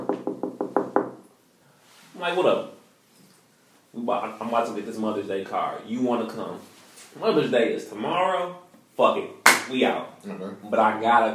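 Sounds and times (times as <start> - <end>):
knocking on a door: 0.0 - 1.2
speech: 2.2 - 2.8, 3.9 - 11.3.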